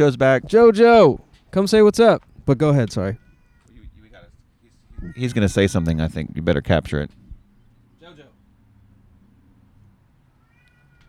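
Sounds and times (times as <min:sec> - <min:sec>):
speech: 0:00.0 - 0:03.2, 0:05.0 - 0:07.2
cat meowing: 0:02.9 - 0:04.0, 0:04.9 - 0:05.6, 0:10.4 - 0:11.0.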